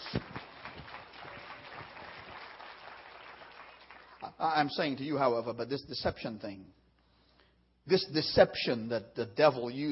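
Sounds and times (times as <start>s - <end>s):
audience clapping in praise of the Lord: 0.0s - 4.7s
speech: 4.3s - 6.8s, 7.9s - 9.8s.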